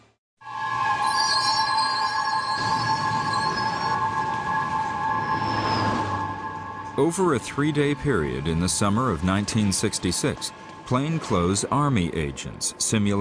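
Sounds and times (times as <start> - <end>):
New York City subway train rumbling: 0.4 - 12.2
subway train wheels squealing with high screeching tones: 0.6 - 7.1
speech: 7.0 - 13.1.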